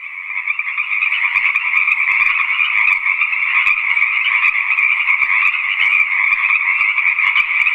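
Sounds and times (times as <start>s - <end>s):
dense chorus of green tree frogs calling: 0.0s - 7.7s.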